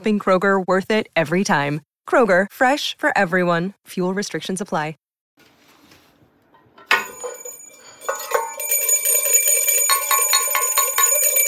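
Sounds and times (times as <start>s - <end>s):
speech: 0.0s - 5.5s
bell ringing and clanging: 6.9s - 11.4s.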